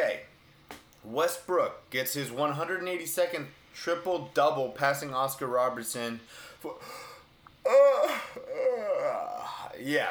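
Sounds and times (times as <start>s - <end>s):
speech: 1.0s - 10.0s
person yawning with a voiced groan: 6.7s - 9.8s.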